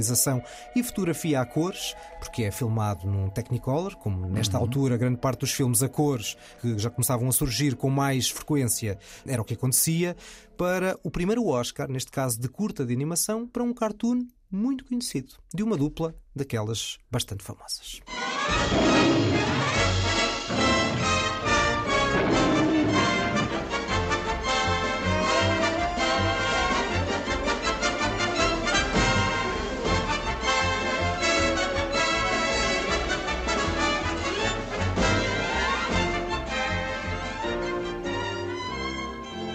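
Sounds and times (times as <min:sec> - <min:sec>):
bright orchestral cartoon series opening theme music with brass: 0:00.0 - 0:10.0, 0:18.1 - 0:39.5
speech: 0:00.0 - 0:20.0.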